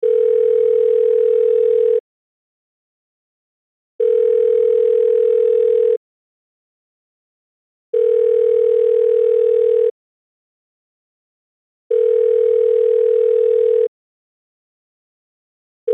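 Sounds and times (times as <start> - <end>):
phone ringing with steady electronic tone: 0.0 - 2.0, 4.0 - 6.0, 7.9 - 10.0, 11.9 - 13.9.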